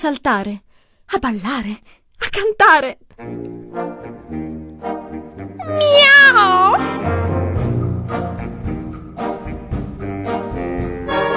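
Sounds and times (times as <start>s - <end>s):
speech: 0.0s - 3.9s
steady music: 3.1s - 11.3s
cat meowing: 5.6s - 6.8s.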